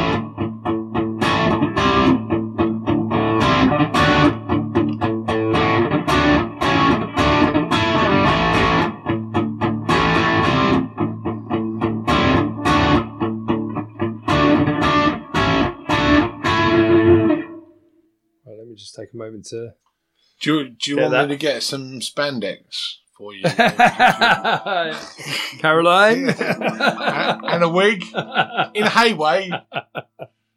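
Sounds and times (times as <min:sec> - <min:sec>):
distorted electric guitar playing an A power chord riff: 0:00.0 - 0:17.6, 0:23.8 - 0:29.3
speech: 0:19.2 - 0:30.3
laughter: 0:23.4 - 0:30.3.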